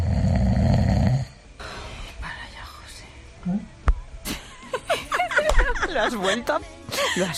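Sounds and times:
radio listener snoring: 0.0 - 1.9
people chuckling: 4.2 - 7.3
speech: 6.0 - 7.3.

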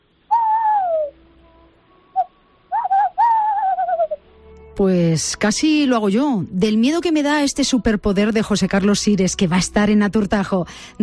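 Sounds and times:
person imitating tawny owl hoots: 0.3 - 1.2, 2.2 - 4.2
speech: 4.8 - 11.0.

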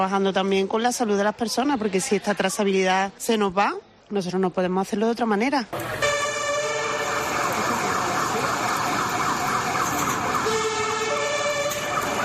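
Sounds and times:
speech: 0.0 - 6.2
constant rumble of traffic: 5.8 - 12.2
fire and police sirens wailing through city streets: 5.8 - 12.2.

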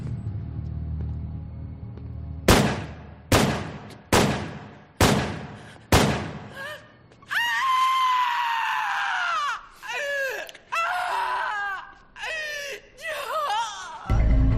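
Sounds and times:
loud gunshots at the Dakota apartment building in New York: 2.5 - 6.5
person screaming anguished: 6.6 - 14.1.

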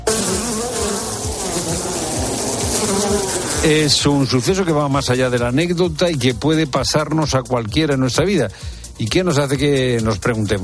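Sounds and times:
dense swarm of bees buzzing: 0.0 - 4.3
speech: 3.6 - 10.6.

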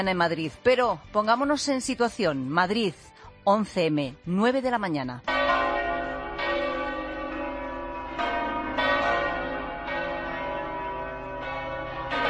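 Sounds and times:
speech: 0.0 - 5.4
church bells ringing in a peal: 5.3 - 12.2.

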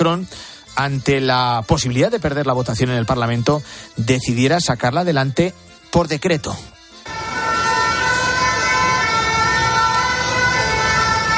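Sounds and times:
speech: 0.0 - 6.7
ambulance sirens wailing in a city street in France: 6.8 - 11.3
constant rumble of city traffic: 7.1 - 11.3.

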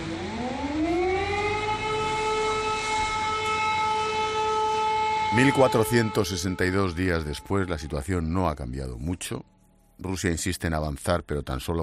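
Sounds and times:
air raid siren wailing: 0.0 - 8.6
speech: 5.3 - 11.8.

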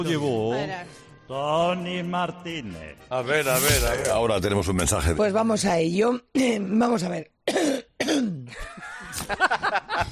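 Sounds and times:
speech: 0.0 - 10.0
harsh coughs: 7.5 - 8.6
raspy throat clearing: 7.5 - 8.6
laughter: 8.5 - 10.0.

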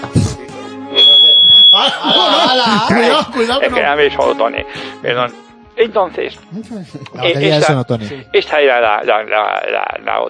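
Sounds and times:
shrill high-pitched electronic alarm beeping: 0.9 - 1.9
laughter: 1.8 - 3.8
speech: 1.8 - 10.2.

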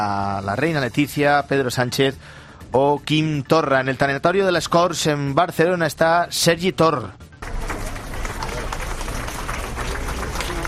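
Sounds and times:
speech: 0.0 - 7.2
large crowd applauding outdoors at a funeral exit: 7.4 - 10.6
murmur of voices: 7.4 - 10.6.

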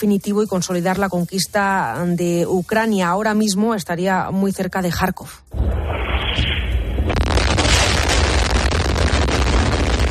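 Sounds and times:
speech: 0.0 - 5.8
bombs falling and exploding in wartime Ukraine near Kharkiv: 5.5 - 10.0.

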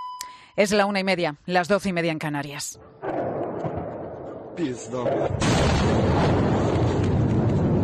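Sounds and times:
speech: 0.6 - 3.1, 4.6 - 6.6
bombs exploding over a city: 3.0 - 7.8.

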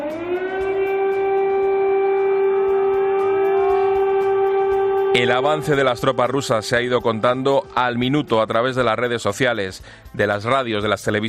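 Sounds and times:
air raid siren wailing: 0.0 - 8.2
speech: 5.2 - 11.2.

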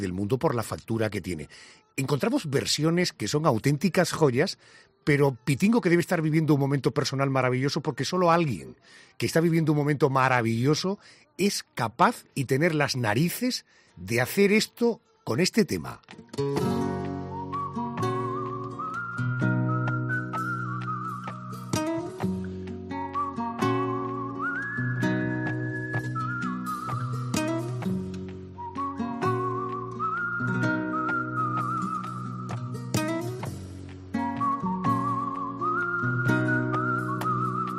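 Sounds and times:
speech: 0.0 - 17.0
person whistling a slow flowing melody: 17.0 - 37.7.

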